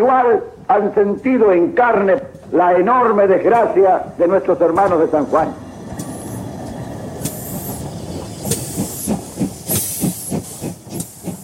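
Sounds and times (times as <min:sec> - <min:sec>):
speech: 0:00.0 - 0:05.6
steam locomotive of a medical train chuffing: 0:04.6 - 0:11.4
sharp bursts of hissing steam from a steam locomotive: 0:05.8 - 0:11.4.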